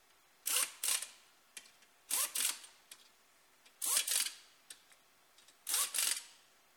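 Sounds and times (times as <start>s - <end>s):
wheel nut air gun: 0.4s - 1.2s, 2.1s - 2.7s, 3.8s - 4.4s, 5.6s - 6.4s.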